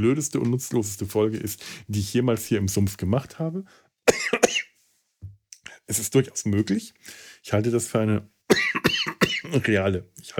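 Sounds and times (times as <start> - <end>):
speech: 0.0 - 4.5, 5.9 - 8.7, 9.5 - 10.3
man coughing in hoarse voiced bursts: 4.1 - 4.7, 8.5 - 9.6.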